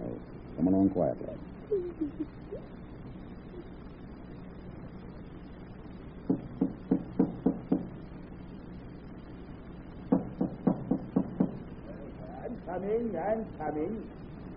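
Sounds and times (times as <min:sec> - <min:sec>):
faint low hum: 0:00.0 - 0:14.5
speech: 0:00.6 - 0:02.8, 0:12.8 - 0:14.2
loud rapid heavy knocking on a door: 0:06.2 - 0:08.0, 0:10.1 - 0:11.7.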